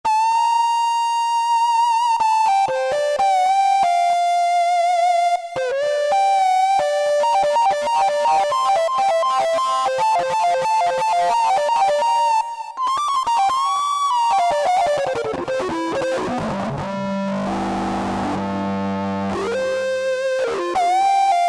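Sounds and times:
warm guitar tone from a Yamaha TG500 synthesizer: 0.1s - 21.4s.

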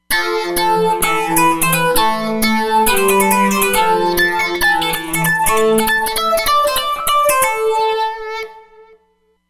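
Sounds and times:
Roland Fantom XR synthesizer DC sidebands: 0.0s - 8.7s.

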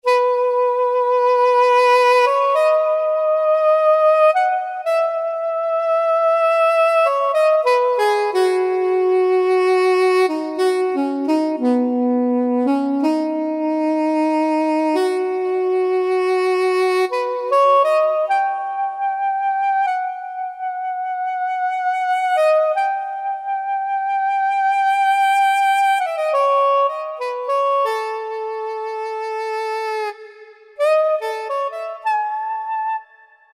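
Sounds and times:
soprano saxophone voice on Yamaha PSR-3000 keyboard: 0.0s - 33.5s.

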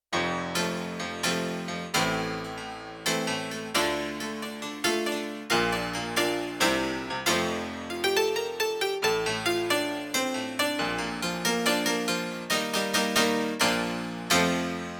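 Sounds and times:
harpsichord sampled on Yamaha TX16W: 0.2s - 14.9s.

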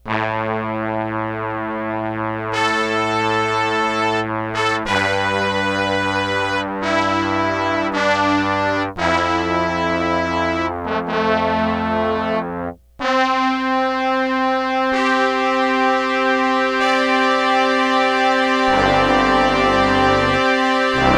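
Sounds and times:
trombones horn section playing in unison: 0.1s - 21.1s.

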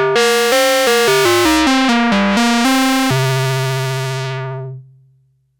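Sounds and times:
Arturia MicroBrute synthesizer klang bells factory patch: 0.2s - 4.4s.

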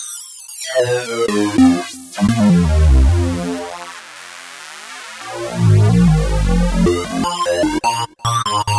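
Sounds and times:
synthesizer sweep sync lead: 0.8s - 3.7s, 5.2s - 8.6s.

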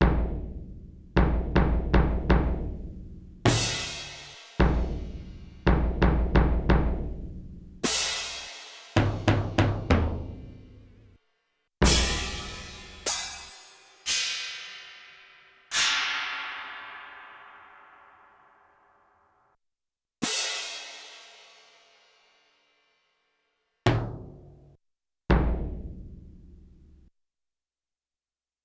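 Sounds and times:
bass drum: 0.0s - 7.9s, 9.0s - 10.8s, 11.8s - 13.0s, 25.3s - 26.9s
cymbal: 3.5s - 5.7s, 7.8s - 9.3s, 11.8s - 18.4s, 20.2s - 22.6s.

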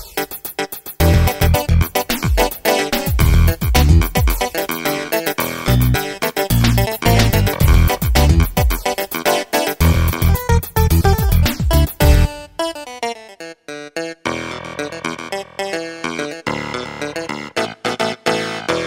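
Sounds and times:
funk clavinet on an E-mu PK-6: 0.2s - 18.8s.

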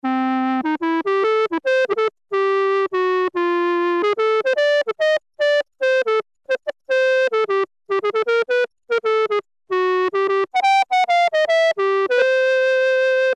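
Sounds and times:
Roland Juno-106 factory preset clarinet tone: 0.0s - 13.3s.

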